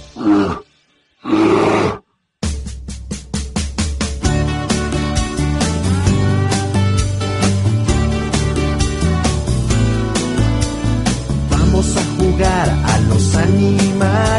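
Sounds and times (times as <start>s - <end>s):
bear roaring: 0.0s - 2.0s
upbeat music: 2.4s - 14.3s.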